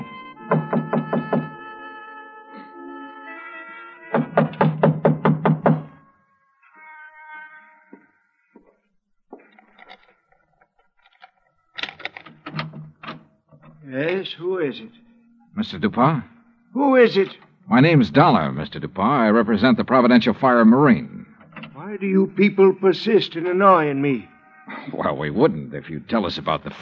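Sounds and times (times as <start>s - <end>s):
loud knocking on a locked front door: 0.5s - 1.6s, 4.2s - 5.9s
speech: 14.3s - 21.2s, 22.0s - 26.7s
laughter: 21.8s - 26.7s.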